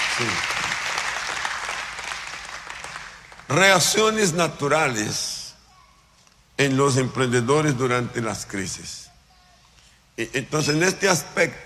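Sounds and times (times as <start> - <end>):
audience applauding after a blessing: 0.0 - 3.7
speech: 0.2 - 0.6, 3.5 - 5.3, 6.6 - 9.1, 10.2 - 11.6.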